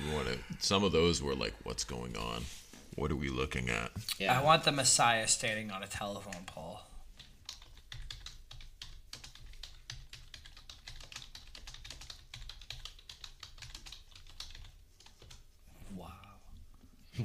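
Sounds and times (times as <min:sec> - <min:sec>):
speech: 0:00.4 - 0:06.9
fast typing on a computer keyboard: 0:07.2 - 0:15.6.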